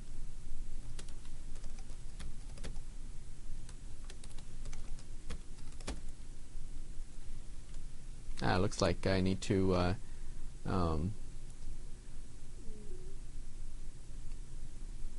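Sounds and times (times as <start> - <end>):
steady hiss: 0.0 - 15.1
computer keyboard typing as a username and password are entered: 0.8 - 2.8, 4.1 - 6.1
speech: 8.4 - 10.0, 10.6 - 11.2.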